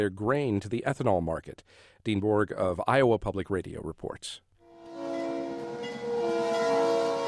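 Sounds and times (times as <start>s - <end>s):
speech: 0.0s - 4.5s
Iowa Northern locomotive whistle blowing: 4.8s - 7.2s.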